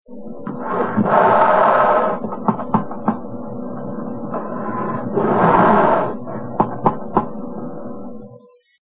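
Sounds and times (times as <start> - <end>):
black bear snorting: 0.6 - 2.4, 4.3 - 6.6.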